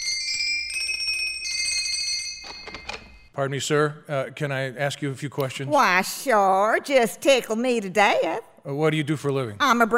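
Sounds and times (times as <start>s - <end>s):
doorbell chiming at a workshop door at the North Pole: 0.0s - 3.4s
speech: 3.4s - 9.9s.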